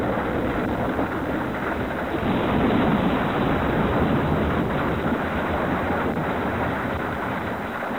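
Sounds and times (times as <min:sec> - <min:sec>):
deep rumbling roar of volcanoes, earthquake and thunder: 0:00.0 - 0:07.8.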